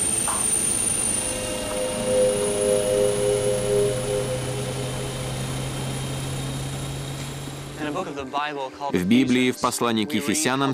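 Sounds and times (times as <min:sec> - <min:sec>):
aircraft engine droning as a plane takes off from runway 24: 0:00.0 - 0:08.4
speech: 0:08.0 - 0:10.7.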